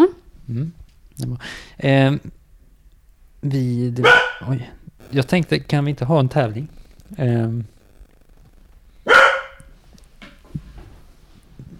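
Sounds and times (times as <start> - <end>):
speech: 0.5 - 2.4, 3.4 - 7.7
dog barking: 4.0 - 4.5, 9.1 - 9.7.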